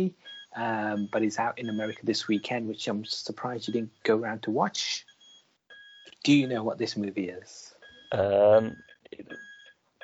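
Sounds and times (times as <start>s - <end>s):
speech: 0.0s - 5.1s, 6.0s - 9.5s
electronic alarm beeping: 0.2s - 2.8s, 5.0s - 6.1s, 7.8s - 10.0s.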